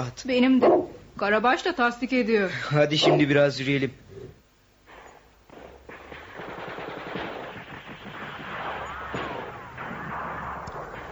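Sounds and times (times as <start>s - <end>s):
speech: 0.0s - 4.0s
distant battle machine-gun bursts: 4.8s - 11.1s
heavier booming battle gunshots: 4.8s - 11.1s.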